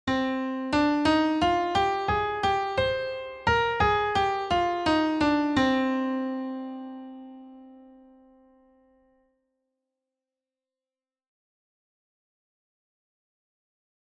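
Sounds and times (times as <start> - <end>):
aeolian scale with perfect fourth leap to octave: 0.1 - 7.9.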